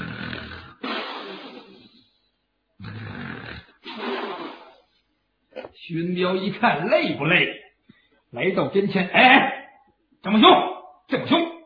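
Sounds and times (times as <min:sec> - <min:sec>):
voice imitating loud thunderous snoring of a drunk man: 0:00.0 - 0:02.0, 0:02.8 - 0:04.9
speech: 0:05.9 - 0:07.6, 0:08.3 - 0:09.5, 0:10.2 - 0:11.4.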